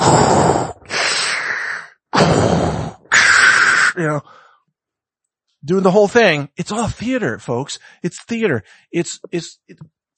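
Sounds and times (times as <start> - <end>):
voice imitating heavy mechanical respirator breathing of a masked villain: 0.0 - 4.4
speech: 4.0 - 4.4, 5.6 - 10.1.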